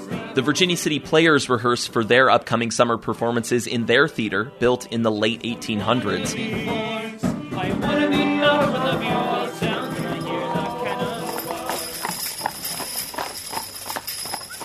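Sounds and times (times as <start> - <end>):
speech: 0.4 - 7.0
horses' hooves clip-clopping on a hard surface during warm-up: 6.1 - 14.6.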